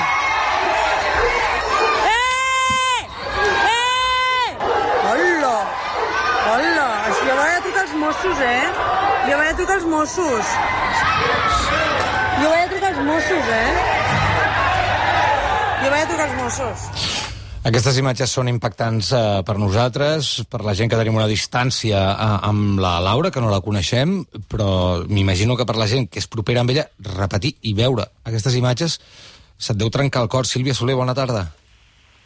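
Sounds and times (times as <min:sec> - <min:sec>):
crowd of neighbours shouting in protest at a police arrest: 0:00.0 - 0:17.1
speech: 0:08.2 - 0:14.2, 0:15.8 - 0:31.6.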